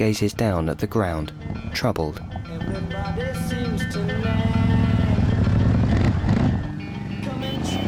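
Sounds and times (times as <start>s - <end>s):
speech: 0.0s - 4.4s
motorcycle carrying two riders pulling away across sand: 2.5s - 7.8s.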